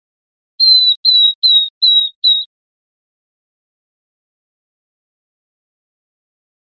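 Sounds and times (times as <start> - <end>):
Northern beardless-tyrannulet giving thin high downward-sliding whistles: 0.6 - 2.5.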